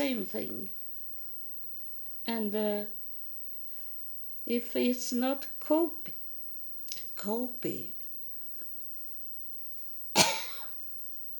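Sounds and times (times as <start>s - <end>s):
speech: 0.0s - 0.8s, 2.3s - 3.0s, 4.4s - 6.2s, 7.2s - 8.0s
person coughing: 10.2s - 10.8s.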